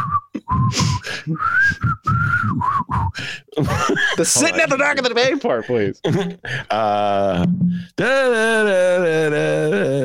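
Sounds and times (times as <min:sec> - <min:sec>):
person whistling a song's well-known melody: 0:00.0 - 0:03.2
speech: 0:00.7 - 0:01.8, 0:04.2 - 0:10.0
laughter: 0:03.6 - 0:06.9.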